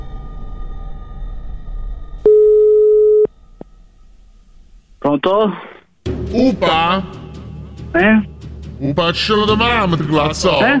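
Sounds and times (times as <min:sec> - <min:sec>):
long steady mid-pitched electronic signal beep: 0:02.3 - 0:03.3
speech: 0:05.2 - 0:07.2, 0:07.9 - 0:10.7.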